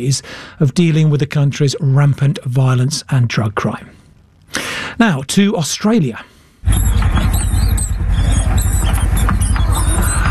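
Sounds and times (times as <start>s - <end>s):
speech: 0.0s - 7.0s
mice squeaking during a rodent plague on farmland in southern and western Australia: 6.6s - 10.2s.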